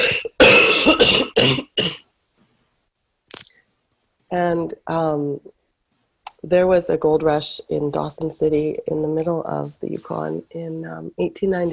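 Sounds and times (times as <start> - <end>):
person coughing harshly: 0.0 - 2.0
speech: 4.3 - 5.6, 6.4 - 11.7.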